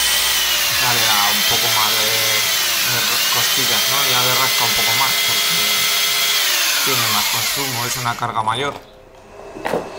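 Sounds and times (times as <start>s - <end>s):
electric drill running on power inverter: 0.0s - 8.4s
speech: 6.8s - 8.9s.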